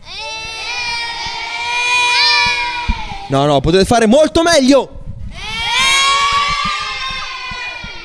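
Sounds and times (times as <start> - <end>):
group of children shouting and cheering at Lignano Sabbiadoro, Italy: 0.0 - 3.6, 5.3 - 8.0
speech: 3.3 - 5.0.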